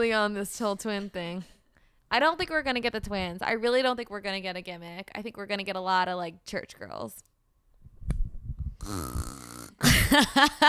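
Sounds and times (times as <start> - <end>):
speech: 0.0 - 7.3, 8.8 - 10.6
person making a rasping snore-like noise with their voice: 8.8 - 9.9
harsher guttural vocal sounds: 8.8 - 10.0.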